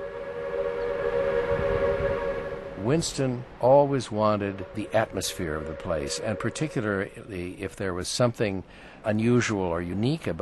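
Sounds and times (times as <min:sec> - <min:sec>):
low rumble: 0:00.0 - 0:07.8
steam locomotive whistle: 0:00.0 - 0:07.8
speech: 0:02.9 - 0:10.4.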